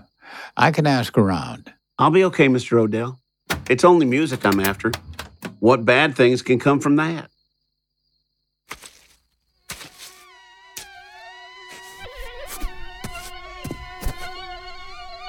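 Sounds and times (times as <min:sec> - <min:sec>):
speech: 0:00.6 - 0:07.3
mosquitoes whining in a thin high buzz on a hot still night: 0:07.3 - 0:15.2.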